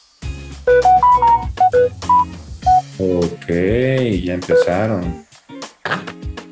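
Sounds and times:
phone message notification tones: 0.7s - 2.8s, 4.5s - 4.8s
speech: 3.0s - 5.2s.

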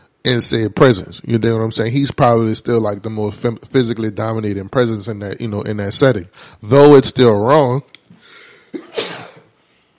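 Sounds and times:
speech: 0.2s - 7.9s
breathy inhale: 6.3s - 6.6s, 8.2s - 8.7s
person sneezing: 8.4s - 9.6s.

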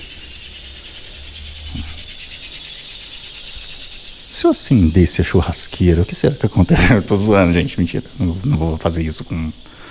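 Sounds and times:
dense chorus of birds chirping outdoors: 0.0s - 9.8s
speech: 4.4s - 9.8s
laughter: 6.5s - 7.8s.

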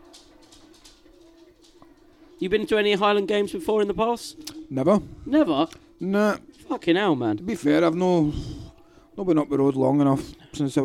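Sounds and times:
spaniel's paws tapping on a hard floor while chasing a ball: 0.0s - 4.6s
low steady hum: 0.0s - 10.8s
speech: 2.4s - 8.5s, 9.2s - 10.8s.

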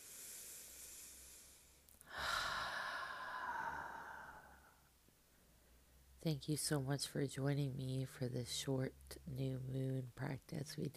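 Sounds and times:
long breathy exhale through the mouth: 0.0s - 4.6s
slow quiet inhale through the nose: 0.0s - 4.7s
speech: 6.2s - 10.9s.

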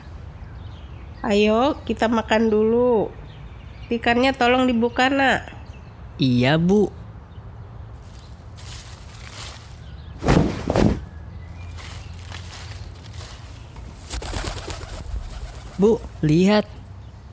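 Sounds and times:
speech: 1.2s - 3.2s, 3.9s - 5.6s, 6.2s - 7.0s, 15.8s - 16.8s
rustling burst: 10.2s - 11.1s, 13.8s - 16.2s
bird calling outdoors: 10.2s - 16.9s.

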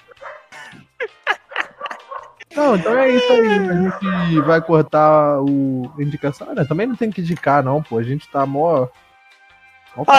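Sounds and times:
laughter: 0.0s - 4.9s
dog barking: 0.1s - 0.5s, 1.5s - 2.5s, 3.6s - 4.7s
speech: 2.6s - 9.0s, 10.0s - 10.1s.

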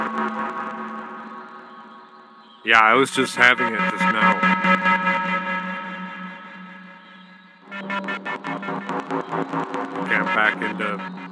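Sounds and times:
speech: 2.6s - 4.9s, 10.2s - 11.2s
dense distorted synth tone smeared by runaway delay feedback: 3.1s - 11.3s.

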